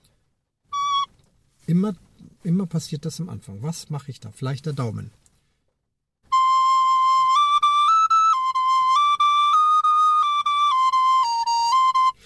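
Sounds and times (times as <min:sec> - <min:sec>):
rosewood wind instrument playing sustained notes in sequence: 0:00.7 - 0:01.1, 0:06.3 - 0:12.2
speech: 0:01.7 - 0:05.2.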